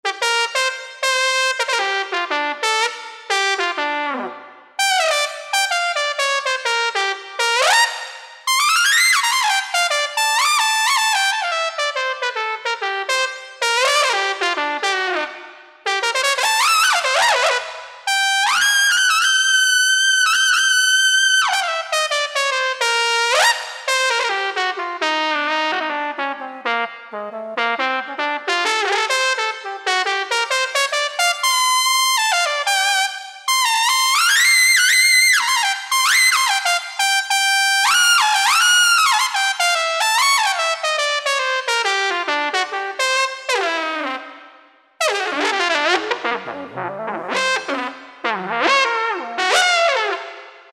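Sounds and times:
Yamaha EX5R synthesizer factory preset trumpet: 0.0 - 50.7.

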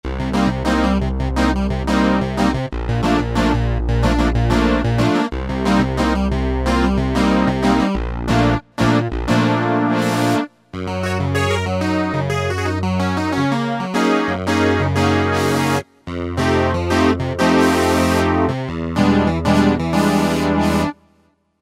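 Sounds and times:
vintage synth guitar clavinet: 0.2 - 21.0.

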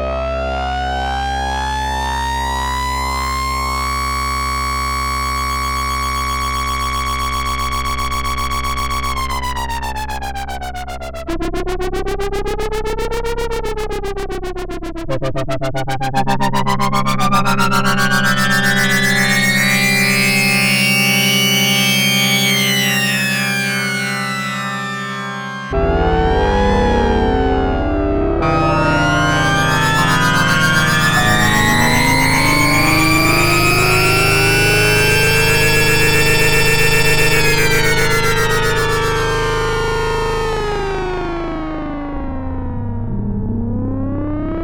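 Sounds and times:
Sequential Circuits Prophet-5 Ver.3 synthesizer slow sync factory patch: 0.2 - 44.6.

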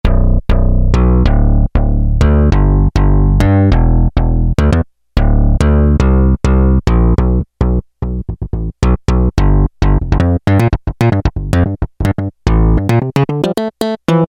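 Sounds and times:
Roland W-30 synth bass factory performance patch: 0.0 - 14.2.

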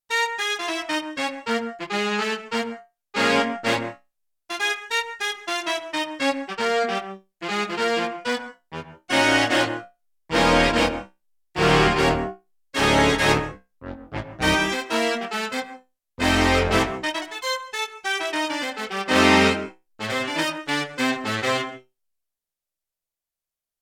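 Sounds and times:
Roland D-70 synthesizer saxophone octave: 0.1 - 4.0, 4.6 - 21.8.

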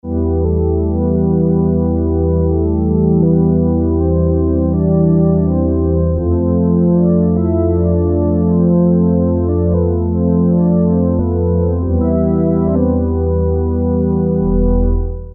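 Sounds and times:
dark ensemble synthesizer preset: 0.1 - 15.3.

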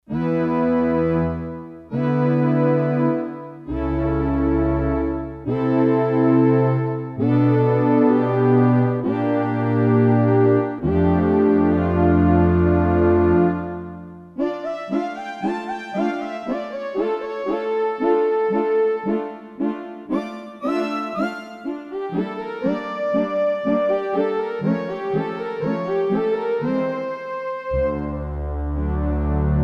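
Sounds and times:
Warm Ensemble on Roland D-10: 0.1 - 29.6.

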